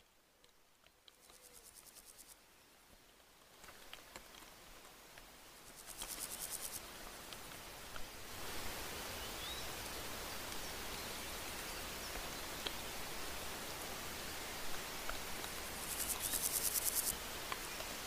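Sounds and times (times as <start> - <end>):
grasshoppers and crickets stridulating in grass: 0.8 - 2.5, 3.4 - 18.0
rapid high-pitched insect chirping pulses: 5.7 - 6.8, 15.8 - 17.2.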